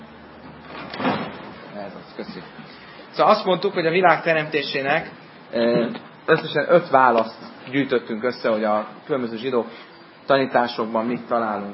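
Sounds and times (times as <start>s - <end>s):
door being shut hard: 0.7s - 1.6s
speech: 1.8s - 11.7s.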